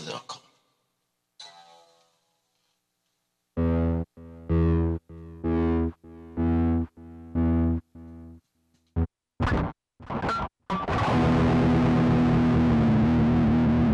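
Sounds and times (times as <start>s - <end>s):
guitar warmup: 3.6s - 13.9s.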